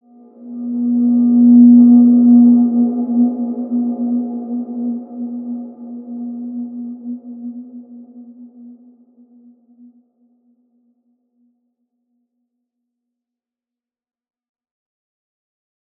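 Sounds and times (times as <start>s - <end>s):
healing ambient soundscape: 0.2s - 9.1s.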